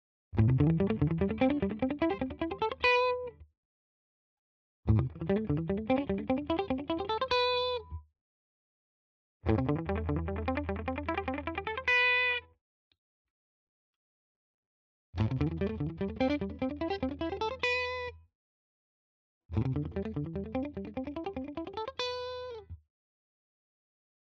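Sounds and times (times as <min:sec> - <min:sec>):
muted clean guitar playing pentatonic in all positions: 0:00.4 - 0:03.3, 0:04.9 - 0:07.9, 0:09.5 - 0:12.4, 0:15.2 - 0:18.1, 0:19.6 - 0:22.7.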